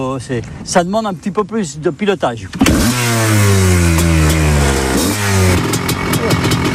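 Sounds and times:
speech: 0.0 - 3.7
petrol motorcycle engine revving through gear changes: 2.5 - 6.7.

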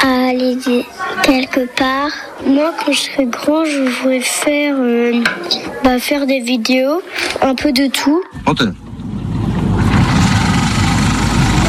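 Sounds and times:
speech: 0.4 - 8.9
car engine running: 8.4 - 11.6.

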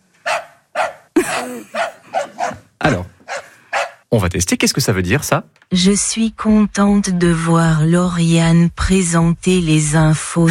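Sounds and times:
dog yapping on command: 0.2 - 4.0
speech: 1.5 - 1.8, 2.8 - 3.1, 4.1 - 10.4.

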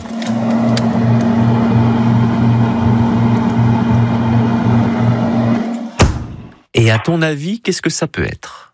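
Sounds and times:
boat engine droning: 0.0 - 6.0
boat cabin door slam: 6.0 - 6.5
speech: 6.9 - 8.7.

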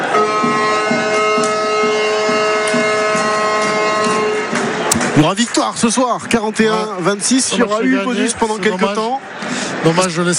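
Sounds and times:
end-of-match stadium siren: 0.0 - 5.0
rhythmic low thumping: 0.0 - 7.2
speech: 5.2 - 10.3.

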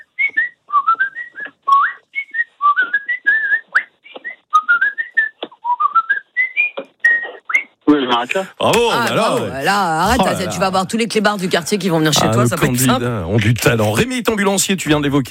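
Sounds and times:
man whistling a high lively soprano melody: 0.0 - 7.7
speech: 8.2 - 15.2
laughter: 8.5 - 12.6.

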